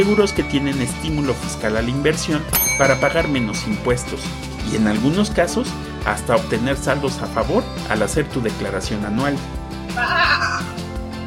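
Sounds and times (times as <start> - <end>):
speech: 0.0 - 10.8
sheep bleating: 10.0 - 10.7.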